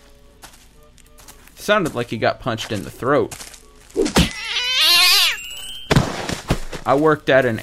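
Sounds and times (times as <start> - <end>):
speech: 1.7 - 3.5, 6.9 - 7.6
cat yowling as it hits the ground: 4.3 - 5.4
thud: 5.9 - 6.8.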